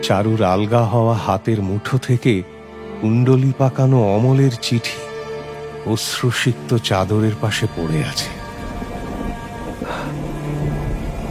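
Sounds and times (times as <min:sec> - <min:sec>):
speech: 0:00.0 - 0:05.0, 0:05.8 - 0:08.4
rain falling in a thunderstorm: 0:05.6 - 0:11.2
low rumbling thunder: 0:07.1 - 0:11.2.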